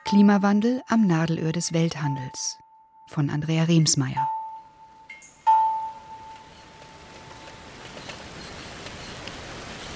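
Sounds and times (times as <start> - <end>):
speech: 0.1 - 4.4
heavy tropical rain downpour: 5.9 - 9.9.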